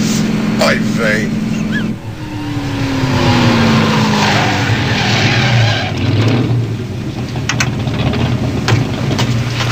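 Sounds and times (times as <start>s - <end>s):
rough rumble of sports car tires: 0.0s - 9.6s
Ferrari sports car engine idling: 0.3s - 9.1s
speech: 0.6s - 1.4s
red Ferrari sports car engine revving down as it pulls over: 1.2s - 8.6s.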